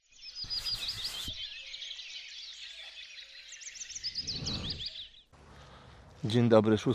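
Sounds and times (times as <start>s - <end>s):
many small birds chirping and trilling in a city park in Gdańsk: 0.0s - 6.2s
speech: 6.2s - 6.9s.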